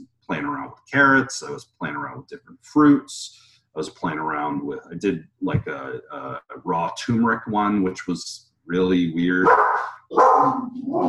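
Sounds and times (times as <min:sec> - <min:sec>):
speech: 0:00.4 - 0:11.0
dog barking harshly with a howl-like bark: 0:09.4 - 0:11.0.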